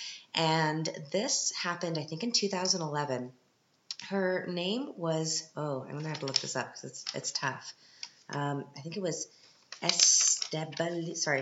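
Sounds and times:
speech: 0.4s - 3.4s, 4.1s - 11.4s
crinkly paper rustling and handling: 6.0s - 7.4s, 9.4s - 11.4s.

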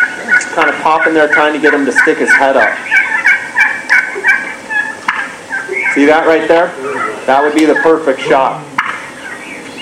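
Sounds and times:
wild turkey in full strut gobbling: 0.0s - 9.7s
speech: 0.6s - 3.0s, 6.0s - 8.7s.

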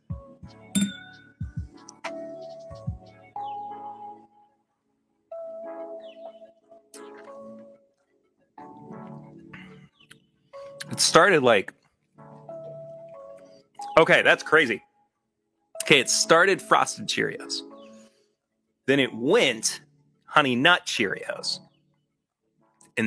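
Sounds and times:
glasses clinking together in a toast: 0.8s - 1.4s
speech: 11.0s - 11.8s, 14.0s - 14.9s, 15.9s - 17.7s, 18.9s - 21.7s.

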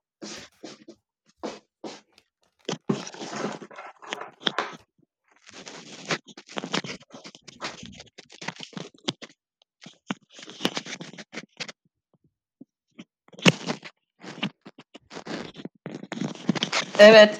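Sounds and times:
foam windscreen scratching and rustling against a microphone: 0.2s - 11.8s, 12.9s - 17.3s
speech: 17.0s - 17.3s.

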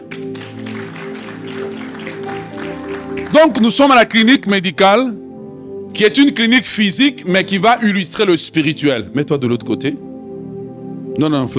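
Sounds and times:
audience applause: 0.0s - 4.2s
speech: 3.3s - 5.2s, 6.0s - 10.0s, 11.2s - 11.5s.

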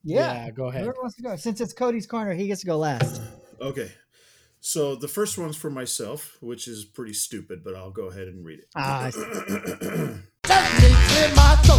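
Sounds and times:
speech: 0.0s - 4.0s, 4.6s - 11.7s
person clearing throat: 9.0s - 10.3s.

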